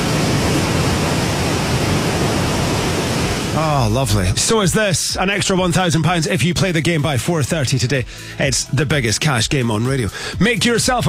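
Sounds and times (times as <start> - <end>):
flowing water rushing: 0.0 - 4.1
speech: 3.8 - 11.0.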